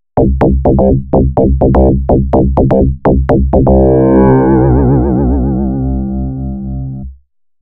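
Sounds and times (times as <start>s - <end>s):
electro dance bass sample: 0.2s - 6.2s.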